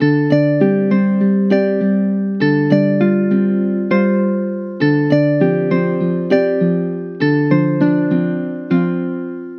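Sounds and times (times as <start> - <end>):
musical loop at 100 in D minor: 0.0 - 9.5.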